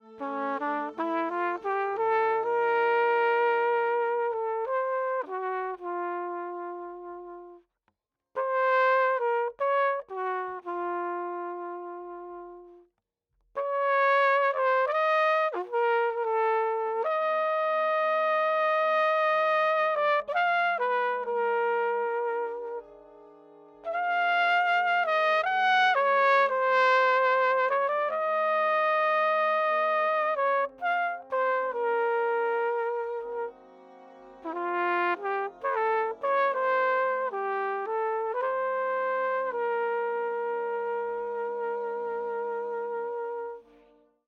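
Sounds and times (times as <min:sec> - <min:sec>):
flugelhorn: 0:00.0 - 0:07.7, 0:08.4 - 0:12.9, 0:13.6 - 0:44.2.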